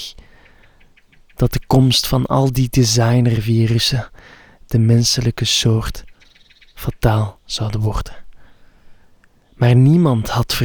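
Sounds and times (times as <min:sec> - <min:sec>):
soft constant outdoor hiss: 0:00.0 - 0:10.6
short bright chirps of a small bird: 0:00.3 - 0:01.7, 0:06.0 - 0:07.1
speech: 0:01.4 - 0:06.1, 0:06.8 - 0:08.2, 0:09.6 - 0:10.6.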